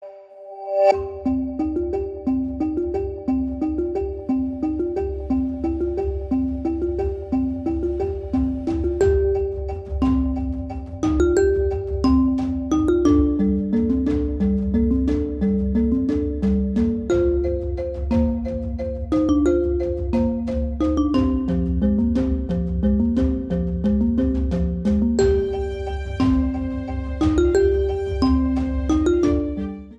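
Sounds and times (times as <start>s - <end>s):
marimba remix ringtone: 0.9s - 29.9s.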